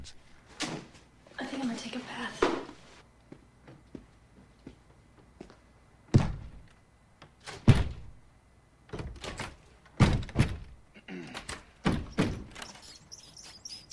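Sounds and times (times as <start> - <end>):
speech: 1.6 - 2.6
door thudding against its frame, failing to close: 6.1 - 6.6, 7.5 - 8.2, 8.9 - 10.8, 11.8 - 12.7.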